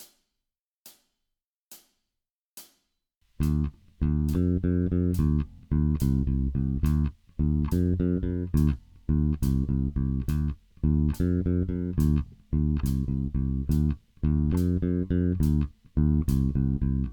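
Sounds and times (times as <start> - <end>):
bass guitar playing heavy rock blues: 3.4 - 17.1.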